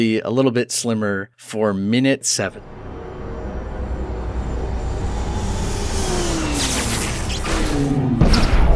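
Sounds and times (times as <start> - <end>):
speech: 0.0 - 2.8
jet engine whining in a film scene: 2.7 - 8.6.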